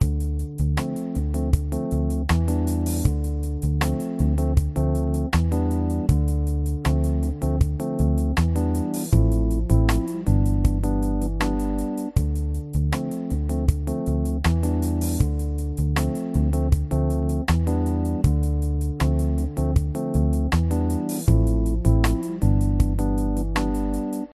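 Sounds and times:
soft smooth jazz: 0.0s - 24.3s.

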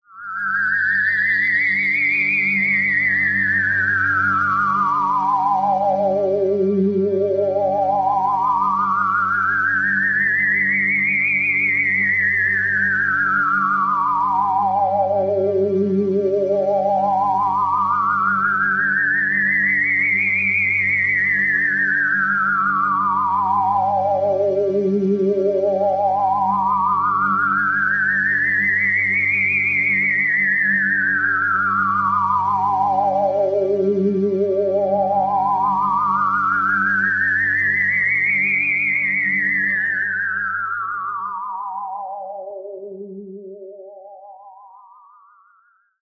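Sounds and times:
cartoon-like science fiction classic alien synth line: 0.1s - 45.8s.

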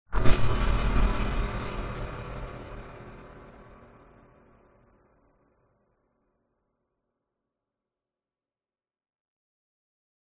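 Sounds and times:
menacing metallic cinematic hit: 0.2s - 5.5s.

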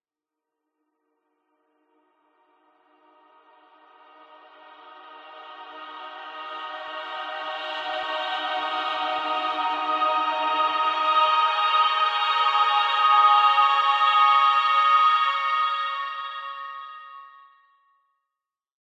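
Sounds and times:
happy dreamy heavenly musical swell: 3.2s - 17.6s.

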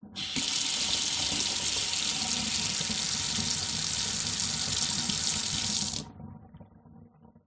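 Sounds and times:
household faucet water running into short metal sink: 0.2s - 6.0s.

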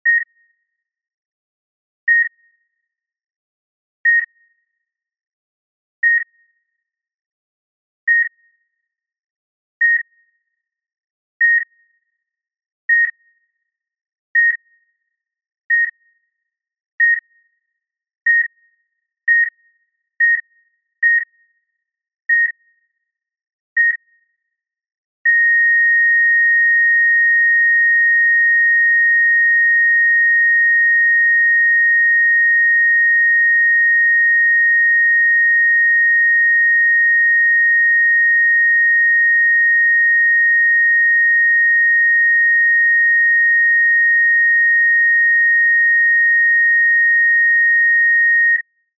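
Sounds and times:
medical heart rate monitor beeping irregularly and flatlining: 0.0s - 0.3s, 2.1s - 2.3s, 4.1s - 4.3s, 6.0s - 6.3s, 8.1s - 8.3s, 9.8s - 10.1s, 11.4s - 11.7s, 12.9s - 13.2s, 14.4s - 14.6s, 15.7s - 16.0s, 17.0s - 17.2s, 18.3s - 18.5s, 19.3s - 19.6s, 20.2s - 21.3s, 22.3s - 22.6s, 23.8s - 24.0s, 25.3s - 48.6s.

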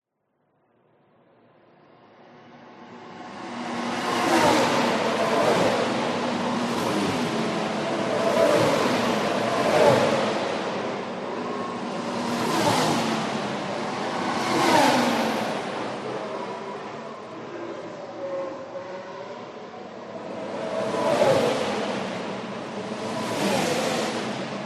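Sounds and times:
F1 race car passing at speed on a race track: 2.1s - 24.6s.

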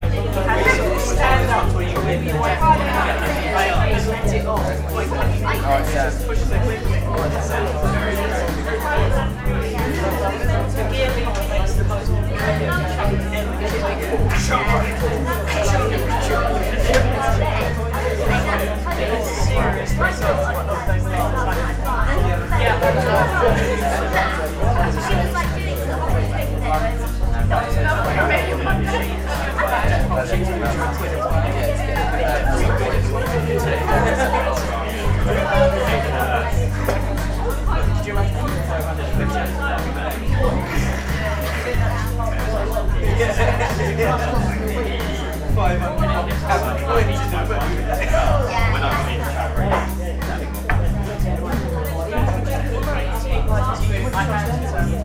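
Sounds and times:
laughter: 0.0s - 55.0s
rhythm and blues music in a bar: 0.0s - 55.0s
small busy bar ambience: 0.0s - 55.0s.

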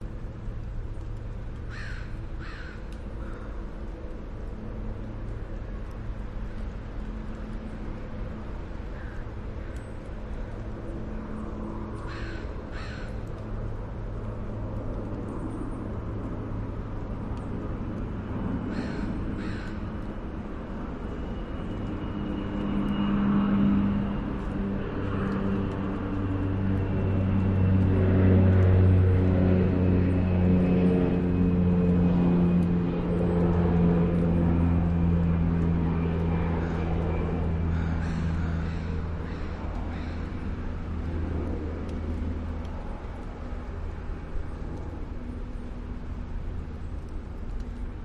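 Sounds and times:
airplane over a park in Vancouver: 0.0s - 48.0s
crackling noise: 0.0s - 48.0s
birds in a park in Vancouver: 36.6s - 40.5s.

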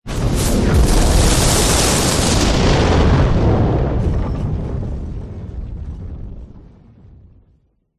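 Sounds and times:
fire burst backdraft: 0.0s - 7.6s
explosion: 0.0s - 7.9s.

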